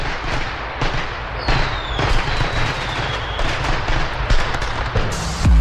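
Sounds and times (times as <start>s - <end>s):
rapid dense firecracker pops: 0.0s - 5.5s
firework rocket whistling upward: 1.4s - 3.9s.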